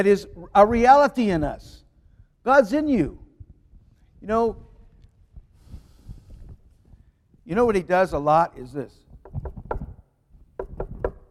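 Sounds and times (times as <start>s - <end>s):
speech: 0.0s - 1.8s, 2.4s - 3.2s, 4.2s - 4.7s, 7.5s - 9.5s
knocking on a wooden door: 9.2s - 10.0s, 10.6s - 11.2s.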